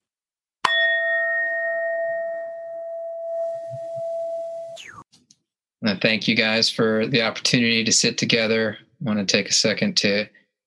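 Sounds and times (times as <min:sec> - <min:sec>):
meditation bell struck at a group mindfulness sitting: 0:00.7 - 0:04.8
speech: 0:05.8 - 0:10.4.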